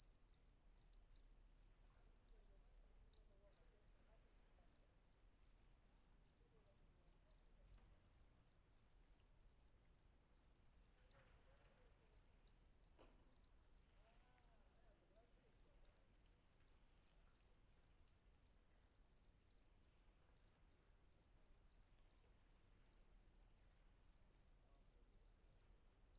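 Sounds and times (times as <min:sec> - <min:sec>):
crickets chirping at night at Vagia, Patmos, Greece: 0:00.0 - 0:26.1.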